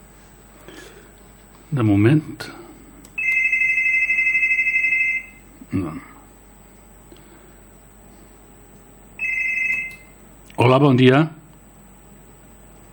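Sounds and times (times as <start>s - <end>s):
speech: 1.7s - 2.6s, 5.8s - 6.1s, 10.6s - 11.4s
telephone ringing with a sustained electronic tone: 3.2s - 5.4s, 9.2s - 10.2s.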